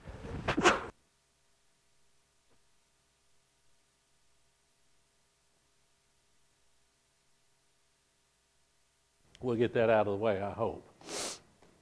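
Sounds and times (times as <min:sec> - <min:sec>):
speech: 0:09.4 - 0:11.3
person sneezing: 0:11.0 - 0:11.5.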